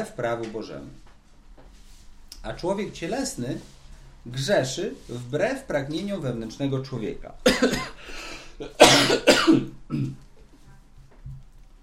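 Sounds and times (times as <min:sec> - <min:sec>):
speech: 0:00.0 - 0:01.1, 0:02.4 - 0:10.2
harsh coughing: 0:07.4 - 0:10.2.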